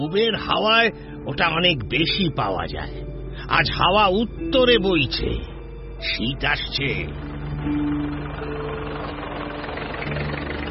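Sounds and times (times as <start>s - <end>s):
speech: 0.0s - 8.5s
engines of trucks bound for a market running: 2.6s - 10.6s.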